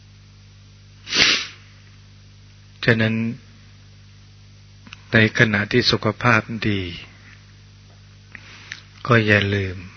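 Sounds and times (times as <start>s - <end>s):
low steady hum: 0.0s - 9.9s
human sneeze: 1.1s - 1.6s
speech: 2.8s - 3.5s, 5.1s - 7.1s, 9.1s - 9.9s.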